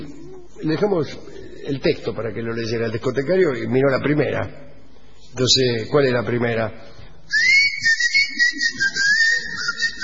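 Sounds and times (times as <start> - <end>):
speech: 0.6 - 4.7, 5.3 - 7.5
person whistling a wavering melody: 7.3 - 10.0.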